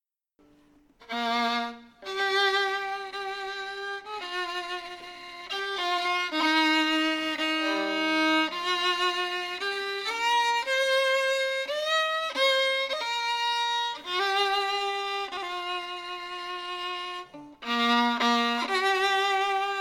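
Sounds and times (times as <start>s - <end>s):
Scottish slow air on fiddle: 0.4s - 19.7s.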